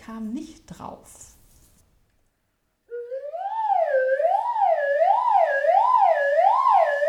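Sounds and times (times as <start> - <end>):
speech: 0.1 - 1.4
slide whistle imitating a whistling water kettle: 2.9 - 6.9.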